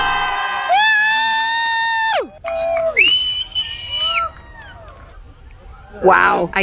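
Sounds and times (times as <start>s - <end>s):
faint crowd background: 0.0s - 6.6s
laughter: 0.0s - 6.6s
long loud whooping shouts: 0.0s - 6.6s
people cheering outdoors: 0.0s - 6.6s
speech: 6.0s - 6.6s.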